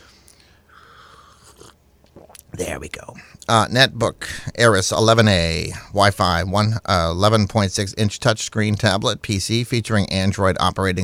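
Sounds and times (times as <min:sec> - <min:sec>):
small mouth noises: 0:00.0 - 0:07.0
quiet sip of coffee: 0:00.1 - 0:02.6
faint swallow: 0:01.1 - 0:02.6
speech: 0:02.6 - 0:11.0.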